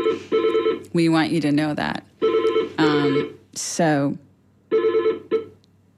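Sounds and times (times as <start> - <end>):
telephone ringing in electronic bursts: 0.0 - 0.9, 2.2 - 3.4, 4.7 - 5.6
speech: 1.0 - 2.1, 2.8 - 4.2.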